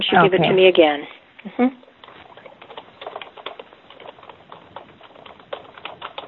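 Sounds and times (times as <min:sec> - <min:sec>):
speech: 0:00.1 - 0:01.9
typing on a computer keyboard: 0:02.0 - 0:06.2.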